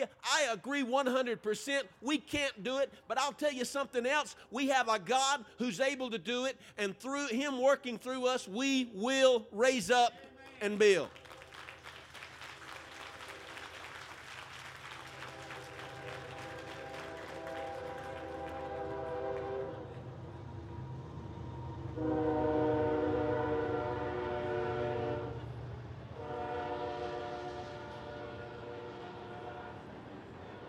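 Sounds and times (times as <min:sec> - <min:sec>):
speech: 0:00.0 - 0:11.2
passing train rumbling: 0:12.6 - 0:30.6
train horn blasts: 0:15.0 - 0:20.1, 0:21.9 - 0:30.6.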